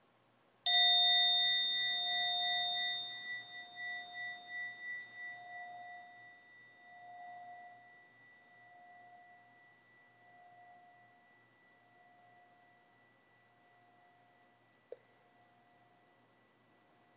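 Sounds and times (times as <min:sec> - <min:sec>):
single meditation bell ringing: 0:00.7 - 0:08.0.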